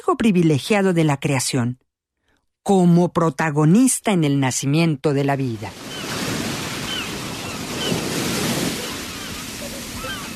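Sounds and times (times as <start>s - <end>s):
speech: 0.0s - 1.8s, 2.6s - 5.8s
sea waves crashing: 5.6s - 10.3s.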